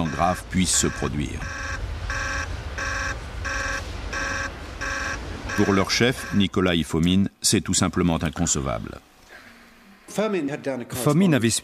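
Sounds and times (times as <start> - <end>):
speech: 0.0 - 1.7, 5.6 - 9.1, 10.1 - 11.6
control room alarm blaring pulsing harmonic tones: 0.0 - 6.6
low rumbling hum: 0.0 - 10.1.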